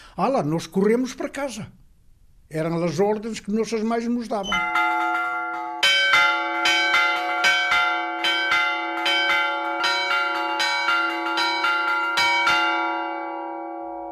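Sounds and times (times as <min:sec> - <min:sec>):
speech: 0:00.2 - 0:01.8, 0:02.5 - 0:04.8
church bell ringing the evening Angelus at dusk echoing off the Douro cliffs: 0:04.5 - 0:14.0.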